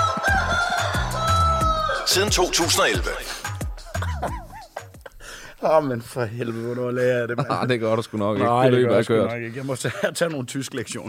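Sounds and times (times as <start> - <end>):
other fowl clucking and squawking: 0.0 - 2.1
rooster crowing: 0.0 - 2.6
laughter: 2.0 - 10.5
speech: 2.1 - 3.4, 5.6 - 11.0.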